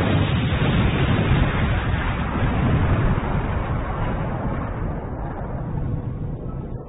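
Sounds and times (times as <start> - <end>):
grenade explosion rumbling: 0.0 - 6.8.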